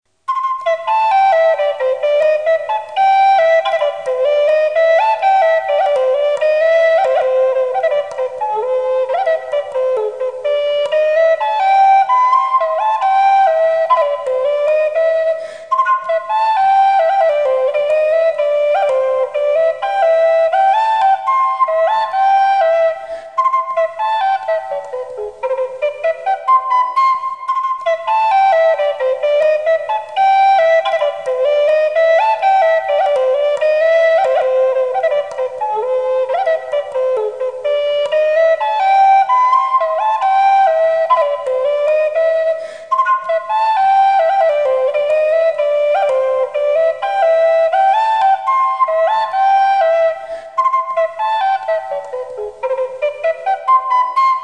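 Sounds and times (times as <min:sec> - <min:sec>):
flute playing dance music: 0:00.1 - 0:54.4.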